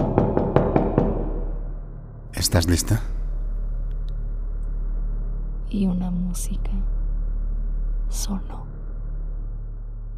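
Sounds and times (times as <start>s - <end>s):
firm knocking on a door: 0.0s - 1.6s
low hum: 0.0s - 10.1s
speech: 2.4s - 3.2s, 5.7s - 7.0s, 8.1s - 8.8s.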